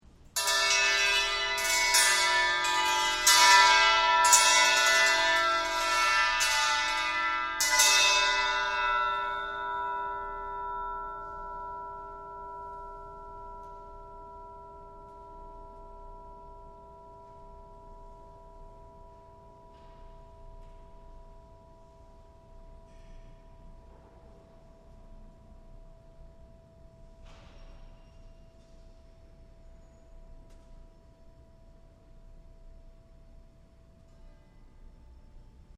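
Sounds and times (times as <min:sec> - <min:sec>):
bell crash: 0:00.4 - 0:17.5.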